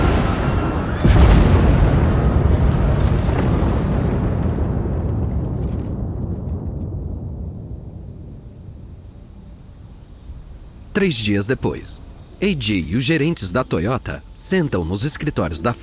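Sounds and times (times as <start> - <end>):
heavy explosion booming: 0.0 - 9.2
deep rolling rumble like a tremor: 0.0 - 15.8
speech: 11.0 - 15.8.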